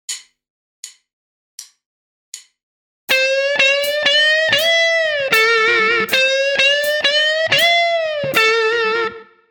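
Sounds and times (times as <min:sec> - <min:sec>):
blues guitar: 0:03.1 - 0:09.5.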